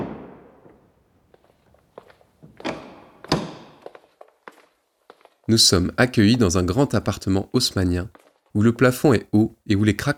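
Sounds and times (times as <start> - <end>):
heavy door thud: 2.6 - 3.8
speech: 5.5 - 10.1.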